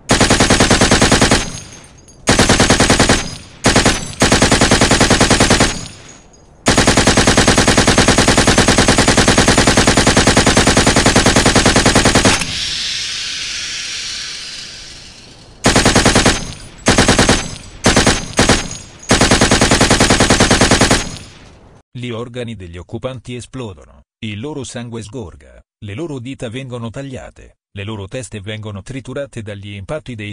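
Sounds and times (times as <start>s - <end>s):
AKK-416 assault rifles firing 5.56 rounds inside a building: 0.0s - 12.6s, 15.6s - 21.4s
hissing: 10.0s - 18.0s
speech: 22.0s - 30.3s.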